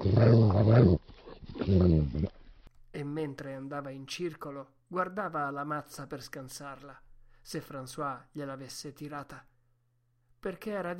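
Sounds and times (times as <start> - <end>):
dog growling in frustration and anger: 0.0 - 2.3
speech: 0.0 - 9.5, 10.4 - 10.9.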